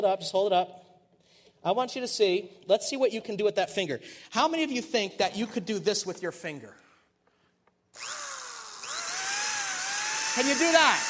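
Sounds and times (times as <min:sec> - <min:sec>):
speech: 0:00.0 - 0:00.9, 0:01.6 - 0:06.8, 0:08.0 - 0:08.2, 0:10.4 - 0:11.0
power drill whirring: 0:07.9 - 0:11.0.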